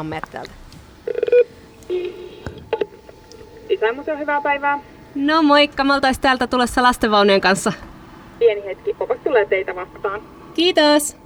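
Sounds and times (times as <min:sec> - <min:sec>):
speech: 0:00.0 - 0:01.2, 0:01.9 - 0:02.6, 0:03.7 - 0:11.2
intercom door buzzer at a museum entrance: 0:01.1 - 0:04.5.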